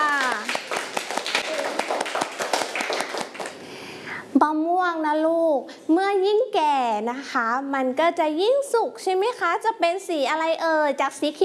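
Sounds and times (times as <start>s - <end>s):
group of people clapping hands in applause: 0.0s - 3.7s
speech: 4.4s - 11.4s.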